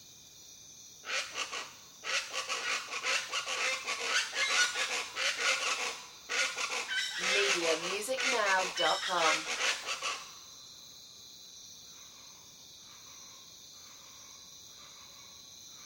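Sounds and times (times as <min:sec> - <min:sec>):
jungle birds giving raucous calls: 0:01.1 - 0:10.3
speech: 0:07.7 - 0:09.6.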